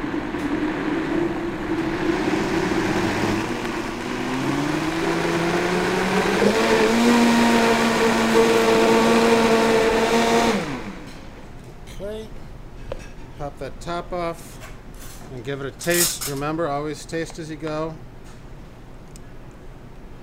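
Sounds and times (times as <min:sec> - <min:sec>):
blender whirring on hot soup: 0:00.0 - 0:11.1
speech: 0:15.4 - 0:18.1.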